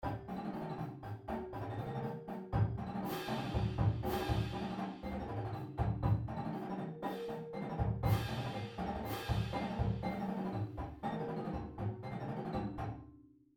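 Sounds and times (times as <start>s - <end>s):
drumline playing street singles exercise: 0.0s - 12.8s.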